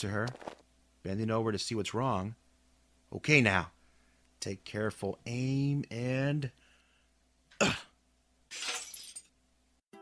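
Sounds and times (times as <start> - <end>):
speech: 0.0 - 2.4, 3.1 - 3.8, 4.4 - 6.6, 7.6 - 7.9
glass shards tinkling and scattering: 8.5 - 9.3
glass pellet breaking: 8.5 - 9.4.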